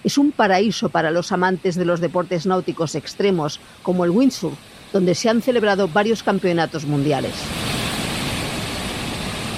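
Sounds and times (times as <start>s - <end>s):
speech: 0.0s - 7.7s
ocean waves crashing against coastal rocks: 0.1s - 9.5s.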